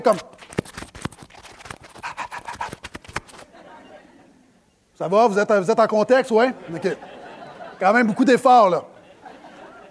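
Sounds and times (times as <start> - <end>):
speech: 0.0 - 0.5, 5.0 - 7.1, 7.8 - 8.9
person imitating a dog panting with breathy huffs: 1.8 - 3.2
laughter: 3.3 - 4.5, 6.4 - 9.8.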